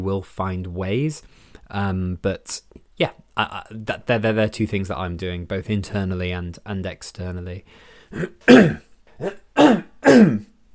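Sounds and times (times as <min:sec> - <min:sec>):
speech: 0:00.0 - 0:10.5
person coughing and clearing throat: 0:08.1 - 0:10.5.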